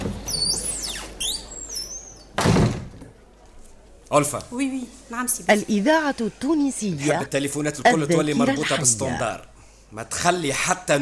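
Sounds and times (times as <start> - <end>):
door creaking and squeaking as it swings: 0.0 - 3.0
solid thunk of a door shutting: 2.4 - 3.1
speech: 4.1 - 11.0.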